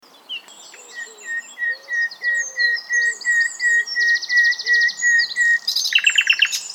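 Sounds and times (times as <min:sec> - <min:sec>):
common nightingale Luscinia megarhynchos song: 0:00.0 - 0:06.7.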